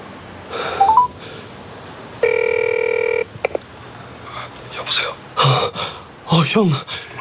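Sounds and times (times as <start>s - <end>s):
quick electronic blips: 0.8s - 1.1s
telephone dialing tone: 0.8s - 1.2s, 2.2s - 3.6s
speech: 6.5s - 7.0s.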